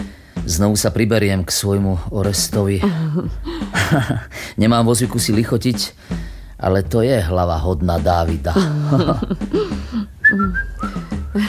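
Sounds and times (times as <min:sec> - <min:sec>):
speech: 0:00.5 - 0:11.4
laughter: 0:02.8 - 0:04.3, 0:08.6 - 0:09.8
person whistling a short melodic tune: 0:10.2 - 0:11.4.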